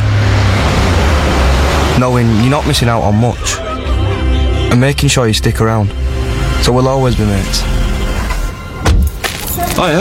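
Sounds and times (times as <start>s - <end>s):
car driving along a road with engine drone and tyre roar: 0.0s - 9.9s
speech: 2.0s - 3.7s, 4.7s - 6.0s, 6.6s - 7.8s, 9.8s - 9.9s
laughter: 2.4s - 5.1s.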